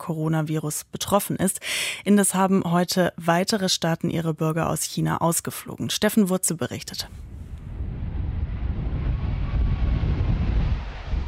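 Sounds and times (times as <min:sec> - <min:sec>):
speech: 0:00.1 - 0:07.3
Boeing 777 airliner landing at Auckland airport: 0:07.1 - 0:11.2.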